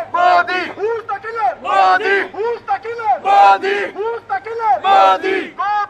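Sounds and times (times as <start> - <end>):
large protest crowd chanting in unison across from an arena: 0.1 - 0.8, 1.6 - 2.3, 3.2 - 4.0, 4.8 - 5.6.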